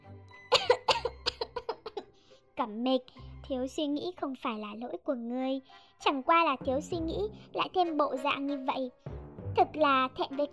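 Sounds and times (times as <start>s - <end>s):
person coughing in a rapid violent fit: 0.5s - 2.1s
speech: 2.6s - 10.5s.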